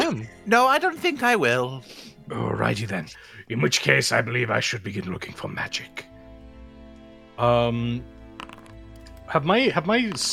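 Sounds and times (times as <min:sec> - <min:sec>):
speech: 0:00.1 - 0:06.1, 0:07.4 - 0:08.5, 0:09.3 - 0:10.3
dice tumbling across a table: 0:08.3 - 0:09.3, 0:10.0 - 0:10.3.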